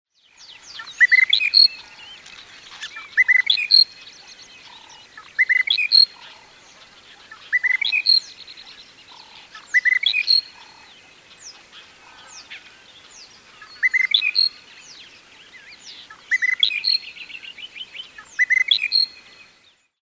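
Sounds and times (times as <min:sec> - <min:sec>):
Monotonous lark: 0:00.3 - 0:19.6.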